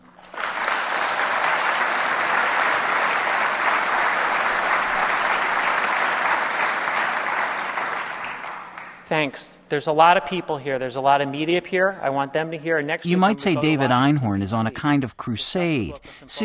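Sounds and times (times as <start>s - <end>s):
conference audience applauding: 0.0s - 9.1s
speech: 9.1s - 16.4s.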